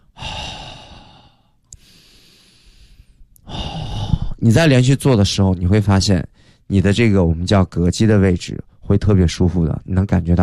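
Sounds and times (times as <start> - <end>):
deep breathing exercise with full inhale and exhale: 0.0 - 4.4
speech: 4.4 - 10.4.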